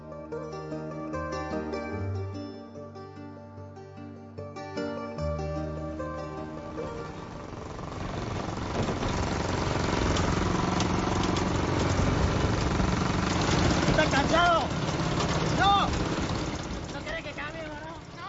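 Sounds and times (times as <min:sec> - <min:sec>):
tonal music: 0:00.0 - 0:08.7
old motorcycle engine running: 0:05.4 - 0:18.2.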